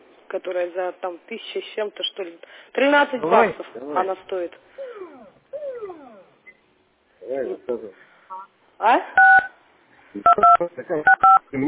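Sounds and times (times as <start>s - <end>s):
speech: 0.3s - 4.8s, 7.3s - 9.5s, 10.1s - 11.6s
telephone keypad buttons being pressed giving DTMF tones: 10.3s - 11.4s.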